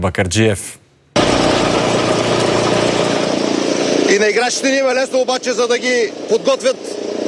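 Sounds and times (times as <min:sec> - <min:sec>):
speech: 0:00.0 - 0:01.6, 0:04.1 - 0:07.0
floor renovation machine grinding parquet floor: 0:01.2 - 0:04.6.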